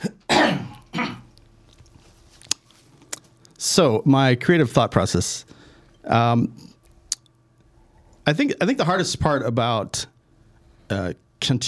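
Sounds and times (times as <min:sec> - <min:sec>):
person coughing: 0:00.0 - 0:01.3
speech: 0:03.7 - 0:06.7, 0:08.3 - 0:10.1, 0:10.9 - 0:11.6.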